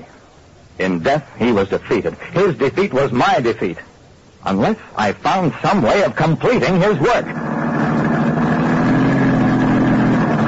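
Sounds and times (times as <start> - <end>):
speech: 0.8 - 7.9
car engine running while driving: 5.0 - 10.4.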